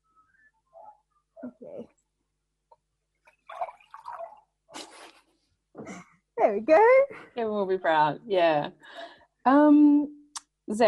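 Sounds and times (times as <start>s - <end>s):
speech: 1.4s - 2.0s, 6.5s - 10.8s
tea pouring into a cup: 3.4s - 4.5s.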